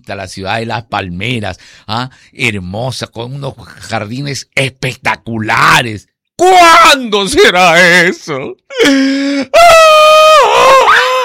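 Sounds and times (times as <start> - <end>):
speech: 0.0 - 9.8
man wailing in mock crying: 8.7 - 11.2.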